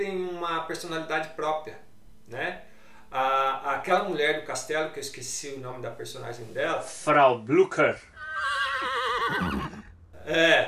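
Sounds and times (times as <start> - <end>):
speech: 0.0 - 9.7, 10.3 - 10.6
horse whinnying: 8.1 - 10.0.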